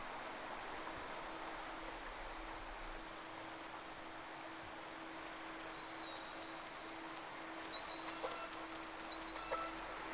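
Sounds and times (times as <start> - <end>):
steady low hum and hiss: 0.0 - 10.1
two whales whistling, recorded from a vessel: 7.8 - 10.0.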